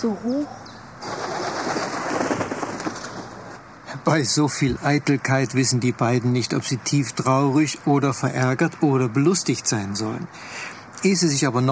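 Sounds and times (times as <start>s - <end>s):
speech: 0.0s - 1.4s, 4.0s - 11.7s
bird flapping its wings and taking off: 1.0s - 3.6s.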